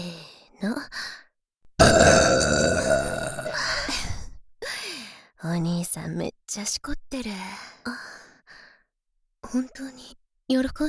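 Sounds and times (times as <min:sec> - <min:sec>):
speech: 0:00.6 - 0:01.1, 0:06.6 - 0:07.7, 0:09.5 - 0:10.8
several people burping at once: 0:01.8 - 0:03.9.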